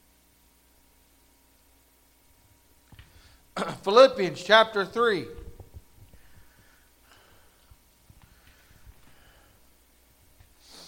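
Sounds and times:
speech: 0:03.6 - 0:05.4
heavy labored breathing with a snorting edge: 0:06.1 - 0:09.8.

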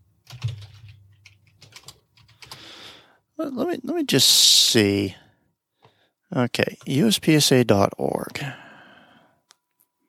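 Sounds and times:
typing on a computer keyboard while entering a web address: 0:00.2 - 0:02.7
speech: 0:03.4 - 0:05.2, 0:06.3 - 0:08.6.

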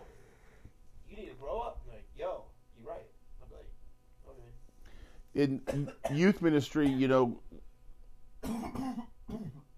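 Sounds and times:
speech: 0:05.4 - 0:07.5
person coughing after choking on saliva: 0:05.6 - 0:07.2, 0:08.4 - 0:09.7.

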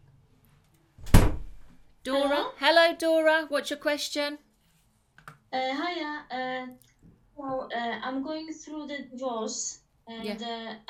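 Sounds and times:
door swinging and thudding shut with rattling decay: 0:01.0 - 0:01.6
speech: 0:02.0 - 0:04.5, 0:05.5 - 0:10.8.

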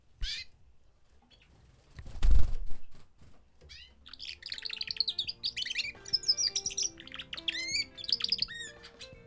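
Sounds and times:
male canaries warbling and twittering: 0:00.2 - 0:00.6, 0:03.6 - 0:09.2.

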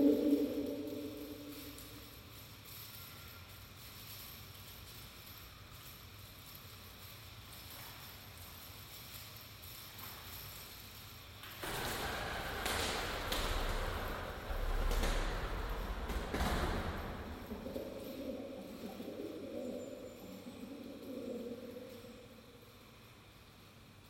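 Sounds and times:
pigeons cooing perched on a sill: 0:00.0 - 0:01.8, 0:11.7 - 0:22.4
beaded doorway rattling in gusts of wind: 0:00.0 - 0:24.0.

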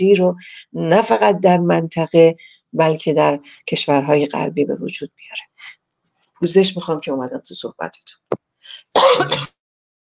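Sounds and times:
speech: 0:00.0 - 0:05.8, 0:06.4 - 0:09.5
person coughing: 0:08.9 - 0:09.6.

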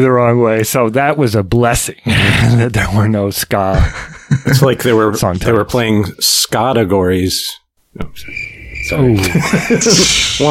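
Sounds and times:
speech: 0:00.0 - 0:10.4
laughter: 0:03.7 - 0:05.1, 0:09.1 - 0:10.4
crickets chirping: 0:08.0 - 0:10.4.

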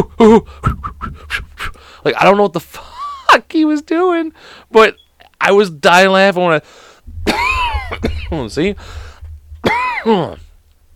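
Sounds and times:
speech: 0:00.0 - 0:00.8, 0:02.0 - 0:07.4, 0:08.0 - 0:09.0, 0:09.6 - 0:10.4
harsh throaty coughs: 0:07.3 - 0:08.4, 0:09.6 - 0:10.4.

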